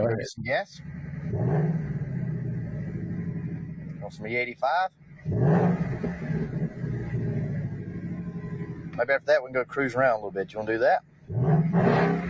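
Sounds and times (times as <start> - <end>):
car engine idling and revving: 0.0 - 12.2
speech: 0.2 - 1.9, 4.1 - 6.5, 9.0 - 11.1.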